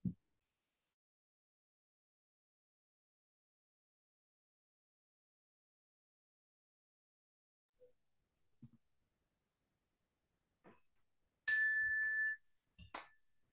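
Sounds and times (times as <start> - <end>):
single bright struck meditation bell ringing: 11.5 - 12.4.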